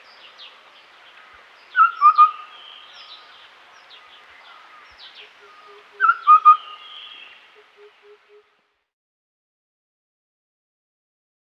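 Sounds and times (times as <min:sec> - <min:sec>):
Streak-breasted scimitar babbler giving a whistled call of clear notes: 0:01.8 - 0:02.5, 0:05.6 - 0:07.2.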